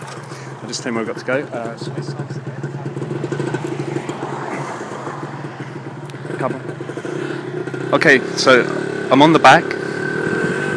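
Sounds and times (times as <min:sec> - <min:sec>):
motorcycle taxi engine with exhaust silencer removed running rough: 0:00.0 - 0:10.7
speech: 0:00.7 - 0:02.6, 0:06.4 - 0:07.2, 0:07.9 - 0:09.8.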